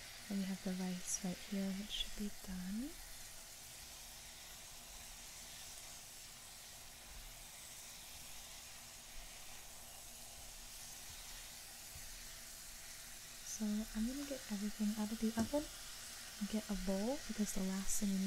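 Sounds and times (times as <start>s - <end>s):
toast sizzling in a pan: 0.0s - 18.2s
speech: 0.3s - 3.0s, 13.6s - 18.2s.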